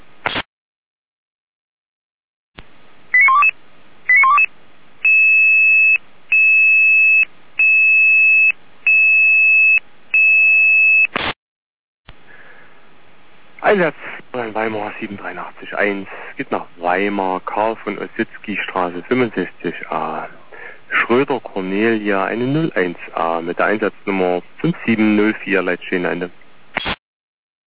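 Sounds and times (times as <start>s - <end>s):
emergency dispatch alarm chirping tone bursts: 3.2s - 3.5s, 4.1s - 10.5s
emergency dispatch alarm long electronic beeps: 3.2s - 3.5s, 4.1s - 11.1s
speech: 13.7s - 20.4s, 21.1s - 26.4s.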